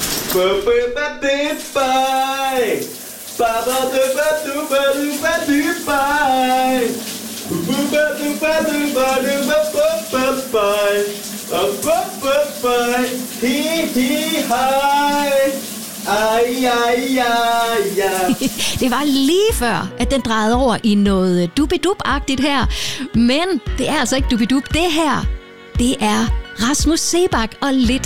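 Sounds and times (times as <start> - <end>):
shower spraying: 0.0 - 0.8, 1.5 - 19.5
man singing in the shower: 0.3 - 18.5
speech: 0.4 - 28.0.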